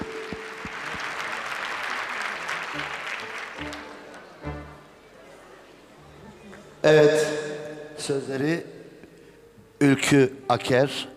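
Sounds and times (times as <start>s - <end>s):
crowd applauding: 0.0s - 4.9s
speech: 6.9s - 7.3s, 8.1s - 8.8s, 9.8s - 11.1s.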